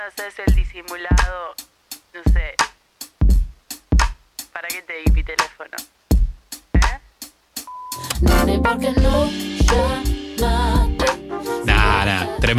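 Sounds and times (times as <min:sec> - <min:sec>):
speech: 0:00.1 - 0:02.7, 0:04.6 - 0:06.0, 0:08.0 - 0:10.2
neo soul song with sung vocals and warm band arrangement: 0:08.0 - 0:12.5.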